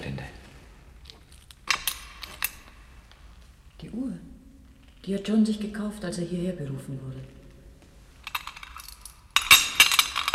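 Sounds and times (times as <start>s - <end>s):
keys jingling and clinking as they are handled: 1.6s - 2.9s, 8.2s - 10.3s
speech: 5.0s - 7.4s.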